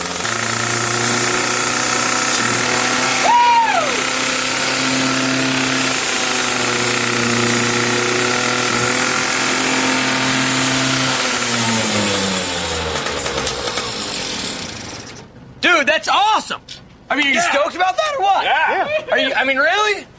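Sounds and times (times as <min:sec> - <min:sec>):
motorcycle engine roaring at high revs: 0:00.0 - 0:15.2
speech: 0:17.2 - 0:20.1.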